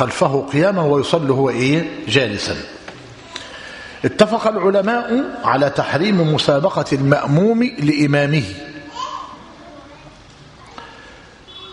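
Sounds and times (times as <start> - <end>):
speech: 0.0 - 2.8, 4.0 - 8.7
children chattering and calling out upstairs while playing: 3.1 - 3.8, 8.6 - 11.7.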